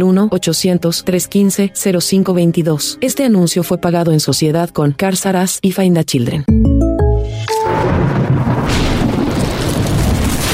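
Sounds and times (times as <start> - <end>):
speech: 0.0 - 8.8
brief musical tone: 6.5 - 8.2
dense roaring storm rumble: 7.5 - 10.5.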